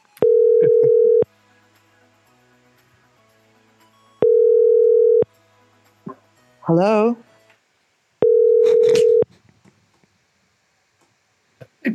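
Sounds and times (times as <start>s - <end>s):
telephone dial tones while placing a call: 0.2s - 1.2s, 4.2s - 5.2s, 8.2s - 9.2s
speech: 6.7s - 7.3s.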